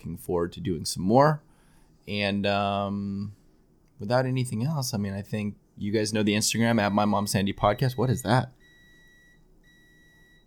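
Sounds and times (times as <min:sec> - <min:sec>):
speech: 0:00.0 - 0:01.5, 0:02.1 - 0:03.4, 0:04.0 - 0:08.6
low hum: 0:00.0 - 0:10.4
electronic alarm beeping: 0:06.8 - 0:10.4.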